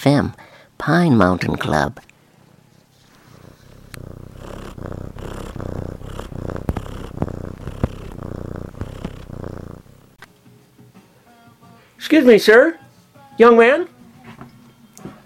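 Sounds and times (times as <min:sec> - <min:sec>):
speech: 0:00.0 - 0:02.1, 0:12.1 - 0:12.8, 0:13.4 - 0:13.9
cat purring: 0:02.9 - 0:10.3
faint clicks: 0:03.4 - 0:10.3.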